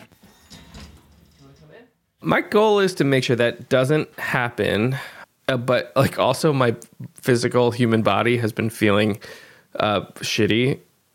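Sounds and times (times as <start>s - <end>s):
sliding door opening to let a pet in: 0.0s - 1.7s
speech: 2.2s - 10.9s.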